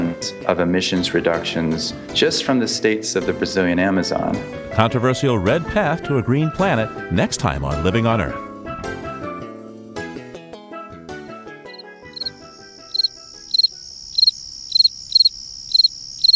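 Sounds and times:
speech: 0.2 - 9.0
fall field cricket chirping: 11.7 - 16.3.

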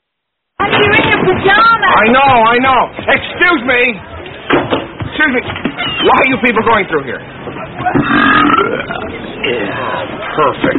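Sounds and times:
speech: 1.3 - 10.7
long drawn-out throaty burp: 8.0 - 9.0.

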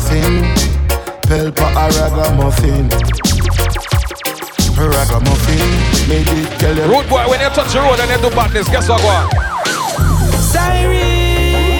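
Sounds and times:
steady pulsing low bass throb: 0.0 - 0.9, 1.6 - 3.9, 4.6 - 9.3, 10.0 - 11.7
speech: 0.1 - 0.6, 1.3 - 4.0, 4.8 - 9.8, 10.5 - 11.2
loud police siren wailing: 7.5 - 11.4.

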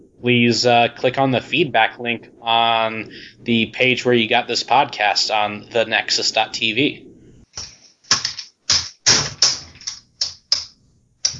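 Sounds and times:
speech: 0.0 - 7.7
loud clattering on a computer keyboard: 7.6 - 11.3.

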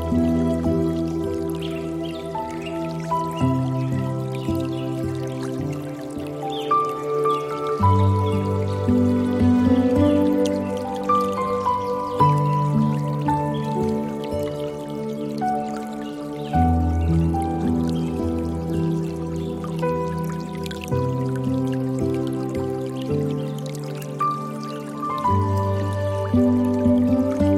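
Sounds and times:
dripping, trickling water: 0.0 - 27.5
soft piano playing slow sustained chords: 0.0 - 27.5.

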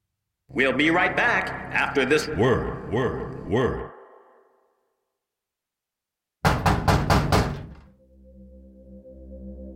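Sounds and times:
speech: 0.5 - 3.9
heavy knocks on a door: 6.4 - 7.9.

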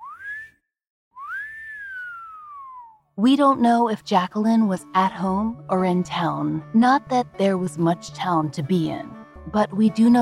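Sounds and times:
wolf whistle: 0.0 - 0.6, 1.2 - 3.0
speech: 3.2 - 10.1.

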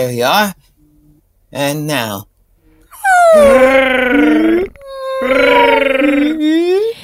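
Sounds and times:
speech: 0.0 - 0.7, 1.5 - 2.3, 3.3 - 6.8
baby sperm whale moaning calls: 2.9 - 6.4.

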